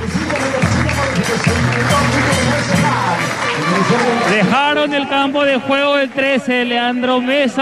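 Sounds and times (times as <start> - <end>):
large stadium crowd applauding and cheering for departing player: 0.0 - 7.6
speech: 3.9 - 7.6.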